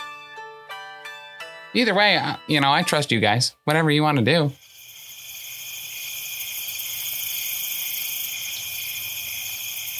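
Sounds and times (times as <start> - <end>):
speech: 1.7 - 4.6
chorus of crickets chirring: 4.6 - 9.9.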